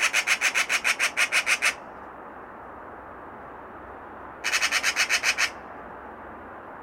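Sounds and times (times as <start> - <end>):
Eurasian magpie harsh rattling call: 0.0 - 1.8, 4.4 - 5.6.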